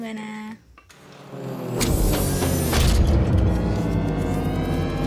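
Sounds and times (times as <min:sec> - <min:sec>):
heavy studio door opening: 0:00.9 - 0:04.9.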